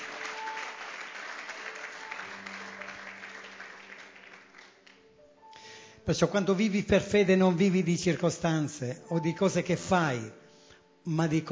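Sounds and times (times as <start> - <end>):
congregation applauding: 0.0 - 5.2
speech: 6.1 - 10.4, 11.0 - 11.5.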